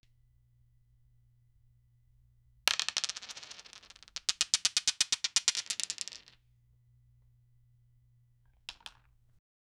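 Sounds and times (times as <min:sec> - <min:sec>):
dice rolling: 0:02.6 - 0:06.4, 0:08.5 - 0:09.4.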